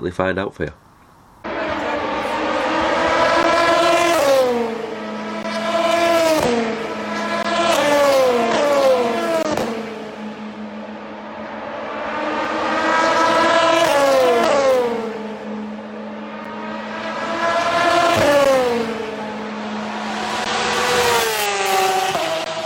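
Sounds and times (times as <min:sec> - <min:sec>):
speech: 0:00.0 - 0:00.8
race car engines roaring past on the track at Le Mans: 0:01.4 - 0:22.6.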